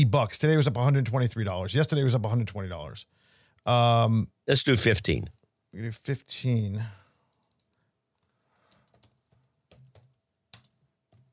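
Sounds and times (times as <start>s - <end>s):
speech: 0.0s - 7.0s
typing on a computer keyboard: 7.3s - 7.8s, 8.7s - 11.3s.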